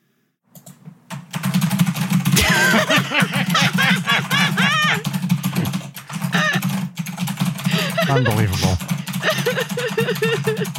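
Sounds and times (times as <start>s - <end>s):
rapid typing on a computer keyboard: 0.5s - 2.4s, 3.5s - 10.7s
people chuckling and vocalizing: 2.4s - 6.8s, 7.6s - 10.7s
speech: 8.1s - 8.9s, 10.1s - 10.7s.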